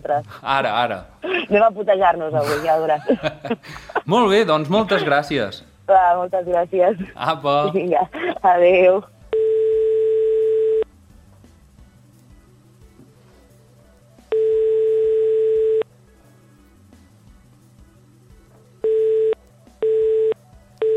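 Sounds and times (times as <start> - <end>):
speech: 0.0 - 9.1
laughter: 2.3 - 5.3, 6.9 - 8.6
unanswered telephone call ringback tone: 9.3 - 10.8, 14.3 - 15.8, 18.8 - 20.9.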